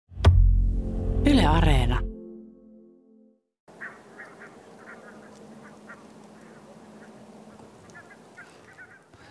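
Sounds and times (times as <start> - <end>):
sustained tone: 0.4 - 3.4
speech: 1.5 - 2.1
ducks quacking: 3.7 - 9.2
geese honking: 3.7 - 9.2
steady airy outdoor noise: 3.7 - 9.2.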